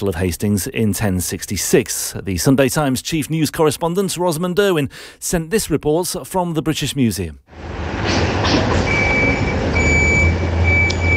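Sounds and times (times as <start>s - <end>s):
speech: 0.0s - 8.9s
lorry engine rumbling as it arrives and reverses: 7.5s - 11.1s
high-pitched lorry reversing beeps: 8.9s - 11.1s.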